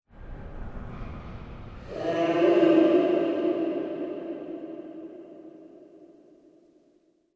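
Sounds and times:
scream: 0.2s - 6.4s
evil voice in horror transition: 1.8s - 6.0s.

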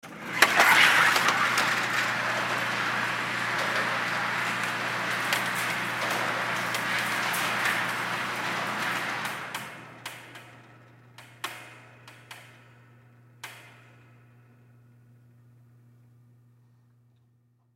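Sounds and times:
indoor shooting range target rail sliding: 0.0s - 11.5s.

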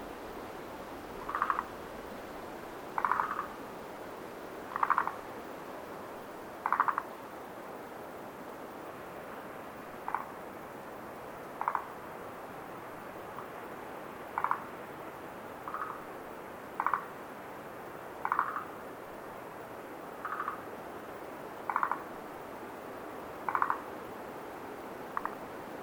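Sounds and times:
wind hiss: 0.0s - 25.8s
frogs croaking at night at Lake Tazawa: 1.1s - 2.3s, 2.9s - 3.7s, 4.5s - 5.5s, 6.5s - 7.4s, 9.9s - 10.4s, 11.4s - 12.2s, 13.2s - 17.3s, 17.9s - 18.9s, 20.0s - 22.4s, 23.0s - 24.4s, 25.0s - 25.7s.

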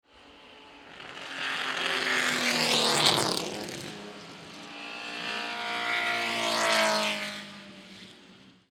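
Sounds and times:
three 1960s era six-cylinder sports race cars driving by: 0.1s - 8.6s.

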